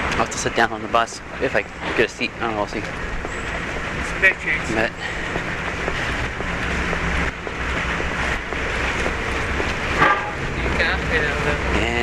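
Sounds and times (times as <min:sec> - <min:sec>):
busy street traffic at an intersection: 0:00.0 - 0:12.0
speech: 0:00.2 - 0:03.2, 0:04.2 - 0:06.1, 0:10.8 - 0:12.0
car horn toots: 0:10.0 - 0:10.4.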